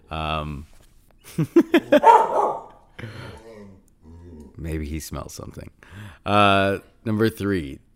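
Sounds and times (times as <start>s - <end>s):
speech: 0.1s - 3.3s, 4.6s - 7.9s
dog barking: 1.9s - 2.9s.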